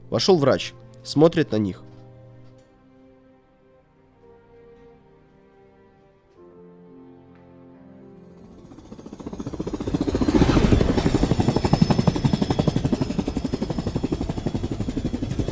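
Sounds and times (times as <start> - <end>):
speech: 0.1 - 1.9
helicopter in flight with rotor chopping: 8.4 - 15.4.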